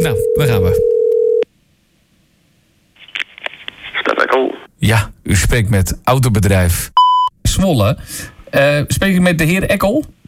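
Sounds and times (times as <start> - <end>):
speech: 0.0 - 1.0, 4.4 - 10.2
telephone dialling tones: 0.2 - 1.4.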